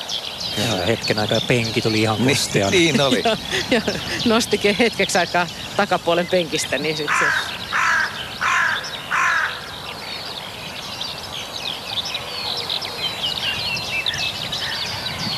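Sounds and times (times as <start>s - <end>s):
skylarks singing: 0.0s - 15.3s
laughter: 0.6s - 7.4s
speech: 0.6s - 7.5s
hooded crow cawing: 7.0s - 9.8s.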